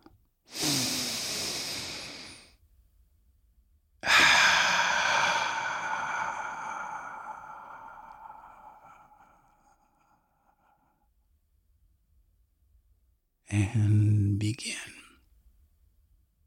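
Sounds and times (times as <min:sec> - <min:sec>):
narrator's deep breath in and slow exhale: 0:00.5 - 0:02.6, 0:04.0 - 0:11.2
speech: 0:13.5 - 0:15.0.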